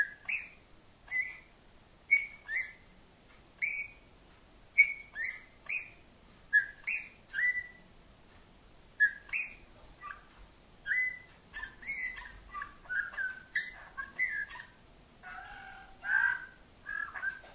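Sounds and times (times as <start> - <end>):
bird whistled chirps: 0.0 - 1.4, 2.1 - 2.8, 3.6 - 4.0, 4.8 - 7.8, 9.0 - 10.2, 10.8 - 14.7, 15.5 - 17.5.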